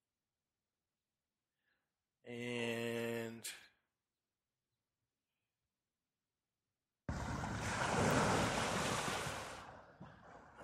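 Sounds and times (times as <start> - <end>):
speech: 2.2 - 3.6
waves crashing on a beach: 7.1 - 9.7.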